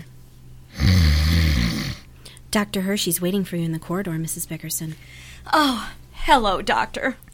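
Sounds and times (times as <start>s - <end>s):
sedated male patient snoring in a hospital: 0.7s - 2.1s
speech: 2.5s - 7.2s.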